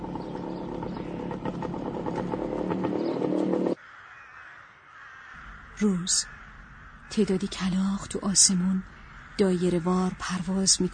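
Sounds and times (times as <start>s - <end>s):
motorcycle riding along a dirt road lined with tall trees: 0.0s - 3.8s
speech: 5.8s - 6.4s, 7.1s - 10.9s.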